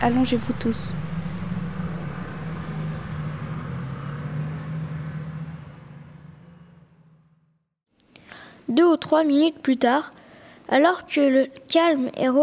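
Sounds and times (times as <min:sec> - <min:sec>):
speech: 0:00.0 - 0:01.1, 0:08.8 - 0:12.4
cars and trucks driving past: 0:00.0 - 0:07.8.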